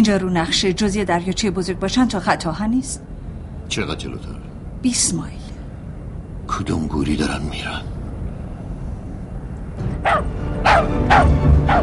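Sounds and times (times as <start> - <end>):
speech: 0.0 - 3.1, 3.7 - 5.4, 6.5 - 7.9
low hum: 0.0 - 11.8
dog barking: 10.0 - 11.8.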